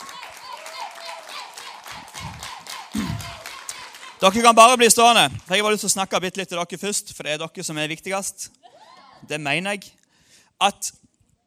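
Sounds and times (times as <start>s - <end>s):
crowd clapping: 0.0s - 6.4s
speech: 4.2s - 8.6s, 9.2s - 10.0s, 10.6s - 11.1s.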